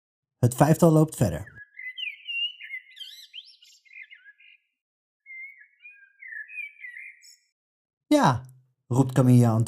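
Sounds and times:
speech: 0:00.4 - 0:01.6, 0:08.1 - 0:09.6
bird singing lively warbling song with chirps and trills: 0:00.6 - 0:07.6.

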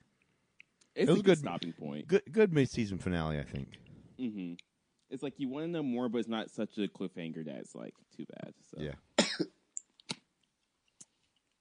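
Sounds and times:
speech: 0:01.0 - 0:09.6
man coughing dry bursts: 0:09.2 - 0:09.5.

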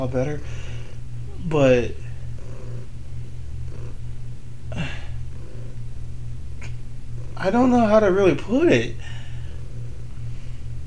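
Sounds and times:
speech: 0:00.0 - 0:00.7, 0:01.4 - 0:02.0, 0:07.4 - 0:09.1
cat purring: 0:00.0 - 0:10.8
cat snuffling: 0:00.4 - 0:01.1, 0:02.0 - 0:04.1, 0:04.8 - 0:05.9, 0:08.9 - 0:10.8.

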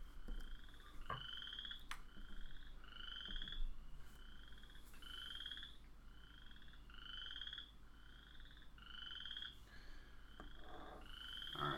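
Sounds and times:
soft hiss: 0:00.0 - 0:11.7
Western chorus frog croaking: 0:00.6 - 0:03.6, 0:04.2 - 0:09.6, 0:10.3 - 0:11.7.

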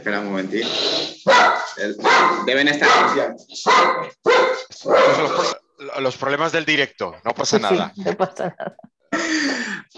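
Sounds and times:
speech: 0:00.0 - 0:04.2, 0:04.8 - 0:09.9
female dogs barking excitedly: 0:01.2 - 0:05.4.

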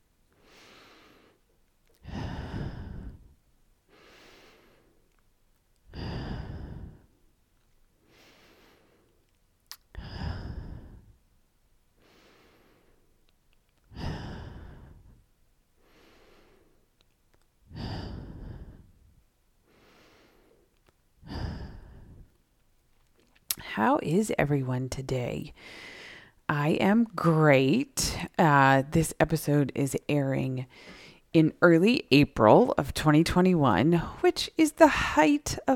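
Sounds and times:
deep breathing in through the nose, out through the mouth: 0:00.3 - 0:05.2, 0:05.9 - 0:07.3, 0:08.0 - 0:11.2, 0:12.0 - 0:13.2, 0:13.8 - 0:16.9, 0:17.6 - 0:22.4, 0:25.6 - 0:26.5, 0:30.7 - 0:31.3
speech: 0:23.8 - 0:25.9, 0:26.5 - 0:35.7.

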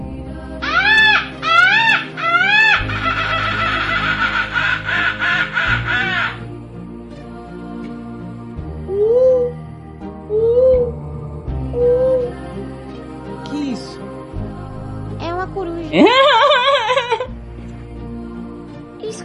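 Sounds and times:
voice imitating bird calls with squawking caws: 0:00.7 - 0:06.5, 0:08.9 - 0:09.6, 0:10.3 - 0:10.9, 0:11.7 - 0:12.3
laughter: 0:01.5 - 0:06.4, 0:16.0 - 0:17.3.

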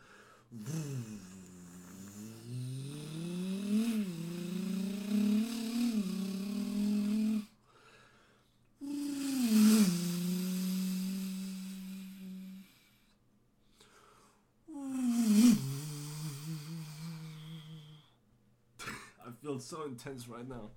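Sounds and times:
speech: 0:00.5 - 0:00.8, 0:19.6 - 0:20.7
person imitating a revving V8 engine with their voice: 0:00.6 - 0:07.5, 0:08.8 - 0:12.7, 0:14.7 - 0:18.0.

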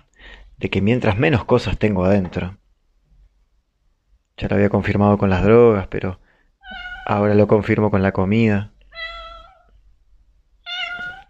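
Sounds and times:
speech: 0:00.6 - 0:02.6, 0:04.4 - 0:08.7
female cat meowing: 0:06.6 - 0:07.2, 0:08.9 - 0:09.8, 0:10.6 - 0:11.2.

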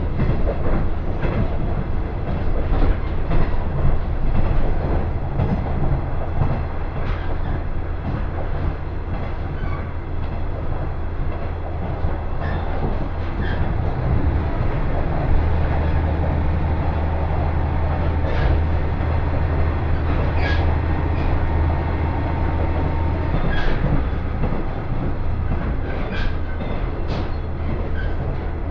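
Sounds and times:
local train rolling, heard from inside the carriage: 0:00.0 - 0:28.6.

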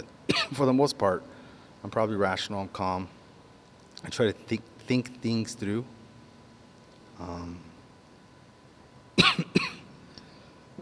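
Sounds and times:
speech: 0:00.0 - 0:03.2, 0:04.0 - 0:06.0, 0:07.2 - 0:07.7
harsh coughs: 0:00.3 - 0:00.6, 0:09.2 - 0:09.9
throat clearing: 0:09.2 - 0:09.9.

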